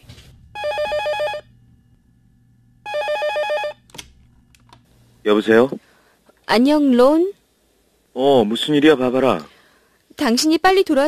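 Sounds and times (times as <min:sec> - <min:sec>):
quiet low hum: 0:00.0 - 0:11.0
telephone ringing with rapid bell trills: 0:00.5 - 0:01.6, 0:02.8 - 0:03.9
speech: 0:05.2 - 0:05.9, 0:06.5 - 0:07.4, 0:08.2 - 0:09.5, 0:10.2 - 0:11.0.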